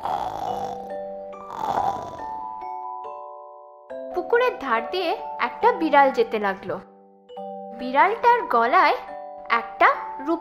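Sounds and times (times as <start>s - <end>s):
frog snoring while asleep: 0.0s - 2.4s
speech: 4.3s - 6.9s, 7.8s - 10.3s.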